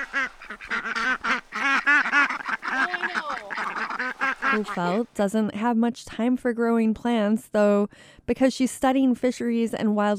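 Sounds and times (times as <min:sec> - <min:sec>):
several ducks kept for eggs quacking: 0:00.0 - 0:05.1
speech: 0:04.5 - 0:10.1.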